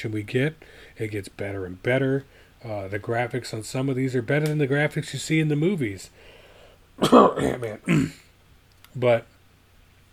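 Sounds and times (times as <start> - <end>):
speech: 0.0 - 6.3, 7.0 - 8.2, 9.0 - 9.3
person giving a deliberate exaggerated cough: 7.0 - 8.3.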